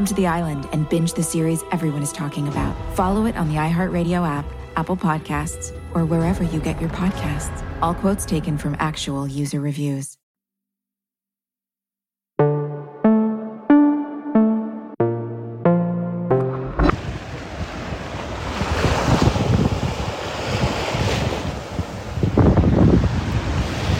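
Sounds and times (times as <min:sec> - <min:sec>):
speech: 0:00.0 - 0:10.1
plucked musical notes: 0:12.4 - 0:17.0
choppy waves of the Gulf washing against the shore at Necoclí: 0:17.0 - 0:23.9
strong wind buffeting the microphone: 0:17.0 - 0:23.9.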